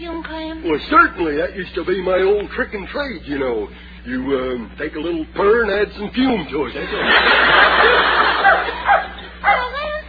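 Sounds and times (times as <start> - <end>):
speech: 0.0 - 8.3
laughter: 6.7 - 10.0
mongrel dog barking: 8.4 - 9.7
mongrel dog whining: 8.4 - 10.0.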